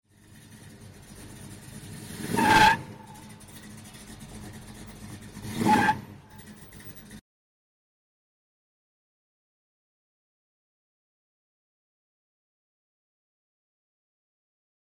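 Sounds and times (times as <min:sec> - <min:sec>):
wheels spinning: 0:00.1 - 0:07.2.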